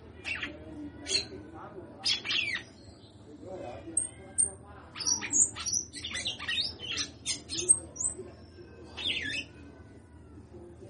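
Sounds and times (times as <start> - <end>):
female red-cowled cardinal singing: 0.2 - 1.3, 2.0 - 3.2, 4.0 - 9.6.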